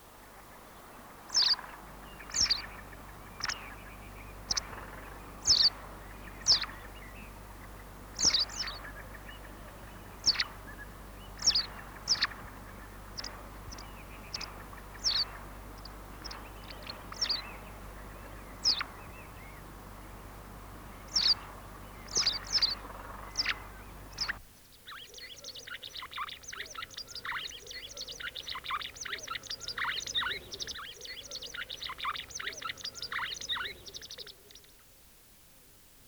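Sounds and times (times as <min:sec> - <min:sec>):
lively twittering bird song: 0:00.0 - 0:34.7
black grouse lekking calls: 0:01.3 - 0:24.4.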